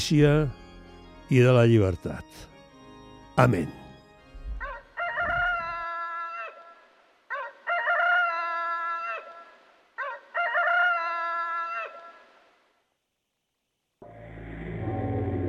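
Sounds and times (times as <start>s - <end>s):
speech: 0.0s - 0.6s, 1.3s - 2.5s, 3.4s - 3.8s
rooster crowing at night atop a church dome: 4.5s - 12.3s.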